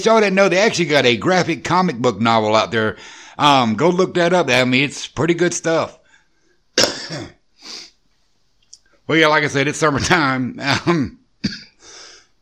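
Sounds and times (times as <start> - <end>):
speech: 0.0 - 6.0, 7.1 - 7.8, 9.1 - 11.6
person coughing: 6.8 - 7.4, 11.4 - 12.0
throat clearing: 6.8 - 7.4, 11.4 - 11.8
wheezy exhale: 7.6 - 8.0, 11.8 - 12.4.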